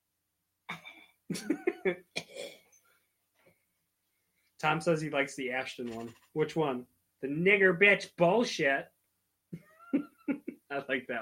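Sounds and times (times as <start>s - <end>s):
speech: 1.3s - 2.1s, 4.6s - 8.9s, 10.7s - 11.2s
person fake coughing: 2.1s - 2.6s.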